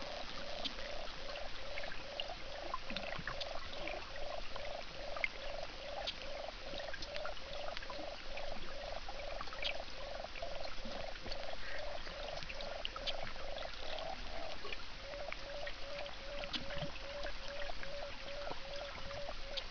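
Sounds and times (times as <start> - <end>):
sonar-like biological sound: 0.0 - 19.6.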